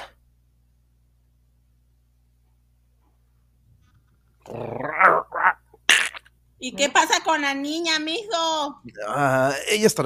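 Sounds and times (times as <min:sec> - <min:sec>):
speech: 0:04.4 - 0:05.2, 0:06.6 - 0:10.0
dog growling and snarling: 0:04.4 - 0:05.6.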